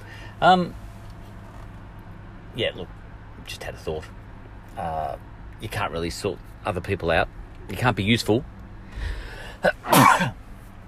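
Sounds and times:
speech: 0:00.4 - 0:00.8, 0:02.6 - 0:04.2, 0:04.8 - 0:10.4
person sneezing: 0:09.5 - 0:10.4.

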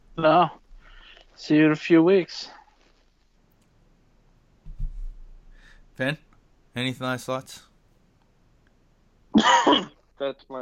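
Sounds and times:
speech: 0:00.2 - 0:00.6, 0:01.4 - 0:02.6, 0:06.0 - 0:06.2, 0:06.8 - 0:07.7, 0:09.4 - 0:10.6
stifled cough: 0:09.4 - 0:10.0.

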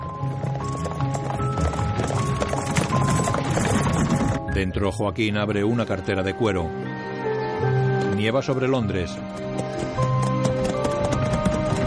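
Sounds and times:
clip-clop of hooves from a horse-drawn carriage leaving a town: 0:00.0 - 0:04.5, 0:07.9 - 0:11.8
speech: 0:04.6 - 0:06.8, 0:08.2 - 0:09.4.

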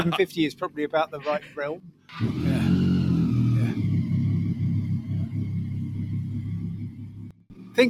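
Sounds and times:
speech: 0:00.0 - 0:02.5
motorcycle engine revving then idling: 0:02.1 - 0:07.8.

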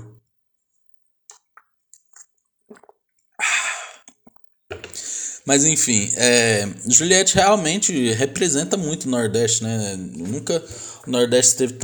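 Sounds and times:
person drinking water: 0:01.3 - 0:05.4, 0:10.2 - 0:11.1
breathy exhale: 0:03.4 - 0:04.0, 0:05.0 - 0:05.4, 0:10.7 - 0:11.1
speech: 0:05.5 - 0:11.8.

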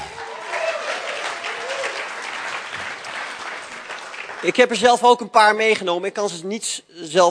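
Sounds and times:
audience applause: 0:00.0 - 0:05.0
speech: 0:04.4 - 0:07.2.

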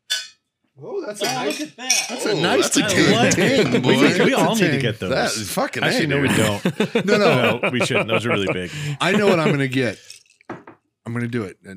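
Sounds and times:
glasses clinking in a toast: 0:00.0 - 0:00.4, 0:01.2 - 0:04.8, 0:08.7 - 0:10.8
speech: 0:00.8 - 0:10.1, 0:11.1 - 0:11.7
laughter: 0:02.2 - 0:10.0.

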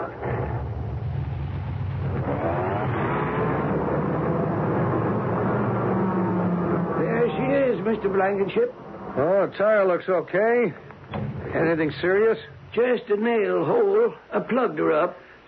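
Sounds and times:
car engine rumbling while backing out of a shop: 0:00.0 - 0:09.1, 0:10.8 - 0:13.3
speech: 0:07.9 - 0:10.8, 0:11.6 - 0:15.4.

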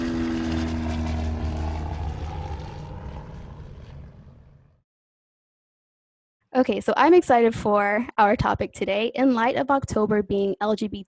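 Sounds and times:
propeller airplane engine droning: 0:00.0 - 0:04.8
speech: 0:06.5 - 0:11.0.

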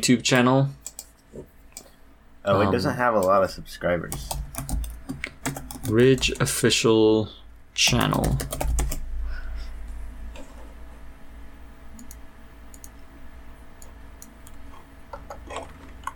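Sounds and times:
speech: 0:00.0 - 0:01.5, 0:02.4 - 0:04.4, 0:05.9 - 0:08.8
low steady hum: 0:01.4 - 0:16.1
typing on a computer keyboard: 0:04.1 - 0:06.5, 0:07.9 - 0:09.0.

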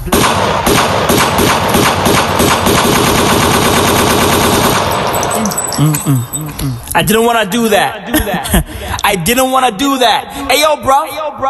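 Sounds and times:
rapid-fire automatic gunfire sound effect: 0:00.0 - 0:05.2
speech: 0:05.8 - 0:11.4
laughter: 0:07.8 - 0:09.2.

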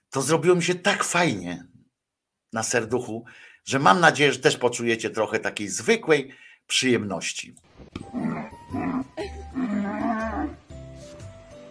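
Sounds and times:
speech: 0:00.1 - 0:01.7, 0:02.5 - 0:08.2
cow bellowing while playing with a ball: 0:08.0 - 0:10.7.

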